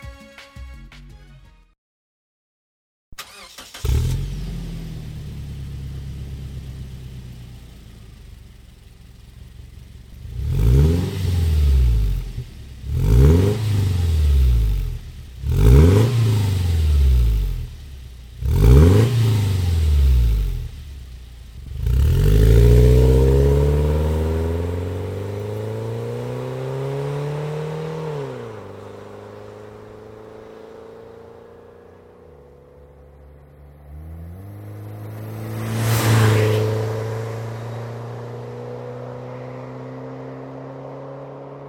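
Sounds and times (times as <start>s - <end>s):
SUV engine idling and revving through throaty aftermarket exhaust muffler: 3.8s - 7.8s, 9.3s - 31.1s, 33.7s - 40.5s.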